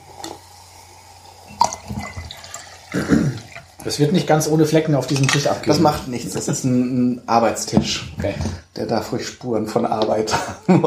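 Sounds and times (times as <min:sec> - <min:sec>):
drinking water poured into a glass: 0:01.5 - 0:03.8
speech: 0:02.9 - 0:03.2, 0:03.9 - 0:10.8
laughter: 0:10.3 - 0:10.8.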